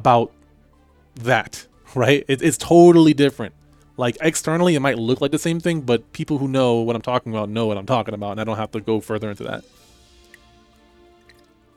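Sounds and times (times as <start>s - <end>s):
speech: 0.0s - 0.4s, 1.2s - 9.8s
person sipping water: 10.0s - 11.7s.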